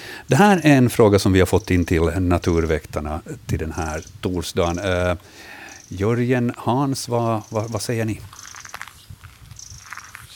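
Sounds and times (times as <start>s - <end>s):
speech: 0.3s - 8.4s
long-tailed tit giving thin high trilling alarm calls: 3.7s - 6.1s, 7.2s - 10.3s.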